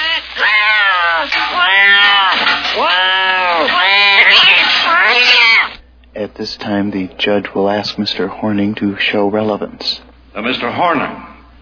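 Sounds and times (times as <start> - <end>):
cat meowing in long wailing calls: 0.0 - 5.8
speech: 6.4 - 11.3.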